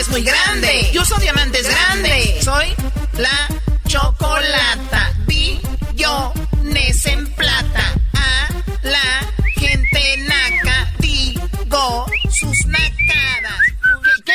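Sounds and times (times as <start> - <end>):
steady thumping beat: 0.0 - 14.0
speech: 0.1 - 4.4
loud whistled insulting tune of quick sliding notes: 9.4 - 11.0, 12.0 - 14.3.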